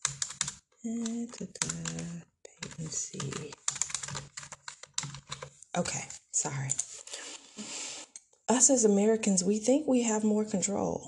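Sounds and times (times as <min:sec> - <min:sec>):
typing on a computer keyboard: 0:00.0 - 0:06.1
speech: 0:00.8 - 0:04.3, 0:05.8 - 0:06.9, 0:08.5 - 0:11.0.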